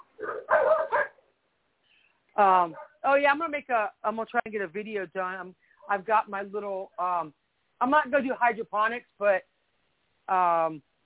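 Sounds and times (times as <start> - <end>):
dog barking outside: 0.0 - 1.2
speech: 2.4 - 9.5, 10.3 - 10.9.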